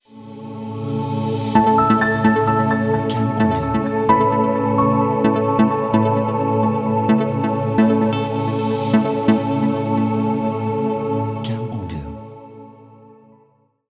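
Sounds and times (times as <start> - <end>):
ambient logo music: 0.1 - 13.5.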